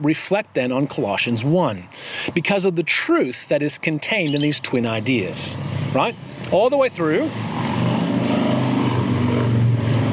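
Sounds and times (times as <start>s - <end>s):
speech: 0.0s - 7.6s
loud motorbike passing: 4.2s - 10.1s.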